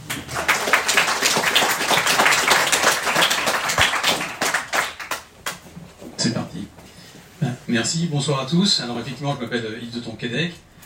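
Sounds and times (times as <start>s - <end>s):
crowd applauding: 0.0s - 5.6s
speech: 7.7s - 10.7s.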